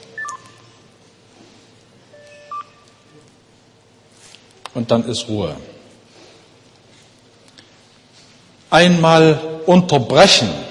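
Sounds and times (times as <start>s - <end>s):
quiet hum: 0.0s - 10.6s
mobile phone keypad tones: 0.2s - 0.6s, 2.1s - 2.8s
speech: 4.8s - 5.7s, 8.7s - 10.6s.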